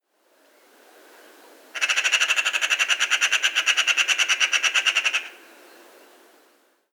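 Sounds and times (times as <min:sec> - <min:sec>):
Eurasian magpie Pica pica harsh rattling chatter: 0:01.8 - 0:05.4.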